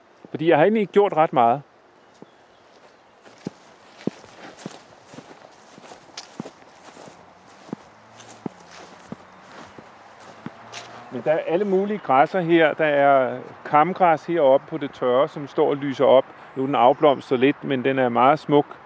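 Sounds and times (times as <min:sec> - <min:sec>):
speech: 0:00.3 - 0:01.7, 0:11.2 - 0:18.8
footsteps walking outdoors across grassy ground toward a beech tree: 0:02.0 - 0:13.5.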